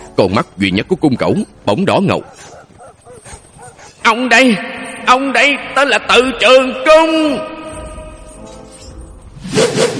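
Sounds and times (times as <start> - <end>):
speech: 0.2 - 2.6, 4.0 - 7.5
feathered arrows whooshing through the air: 9.4 - 9.9.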